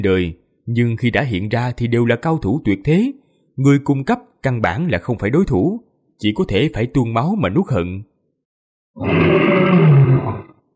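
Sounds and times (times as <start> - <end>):
speech: 0.0 - 8.1, 9.0 - 10.5
old lion roaring loudly: 9.0 - 10.6.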